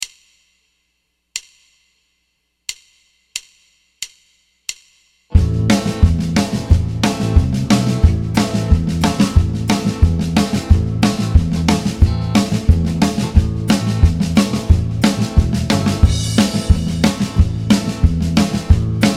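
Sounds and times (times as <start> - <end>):
guitar vamp in A minor: 5.3 - 19.1.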